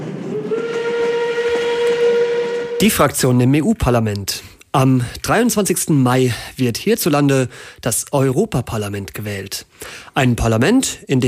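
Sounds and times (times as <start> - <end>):
train steam whistle: 0.0 - 3.2
speech: 2.8 - 11.2.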